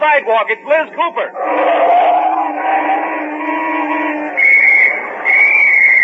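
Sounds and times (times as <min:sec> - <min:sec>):
lower tones and noise: 0:00.0 - 0:06.0
speech: 0:00.1 - 0:02.2
traffic officer blowing a whistle: 0:03.3 - 0:06.0.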